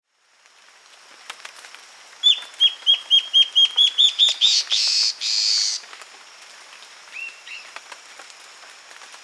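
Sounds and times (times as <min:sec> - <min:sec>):
steady high hiss: 0:00.1 - 0:09.2
Guianan warbling antbird song: 0:02.2 - 0:05.8.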